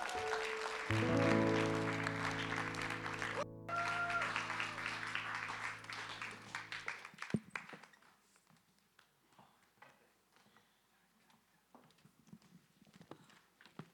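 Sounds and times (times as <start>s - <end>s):
crowd applauding to welcome a speaker: 0.0s - 7.9s
sustained musical chords: 0.9s - 6.6s.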